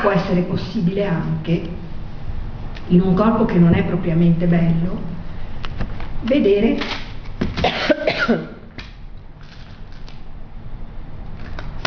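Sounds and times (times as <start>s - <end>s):
speech: 0.0s - 1.9s, 2.9s - 5.2s, 6.2s - 7.0s, 7.6s - 8.6s
low hum: 0.0s - 11.8s
harsh coughing: 7.6s - 8.6s.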